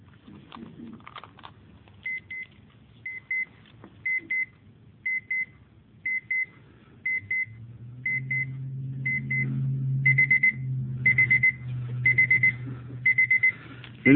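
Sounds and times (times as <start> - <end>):
small alarm clock beeping: 4.1 - 13.6
low hum: 5.0 - 14.1.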